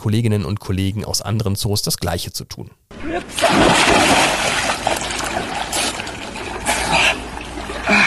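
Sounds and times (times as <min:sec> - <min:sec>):
speech: 0:00.0 - 0:04.4
person plunging into an animal enclosure pool: 0:03.2 - 0:08.0.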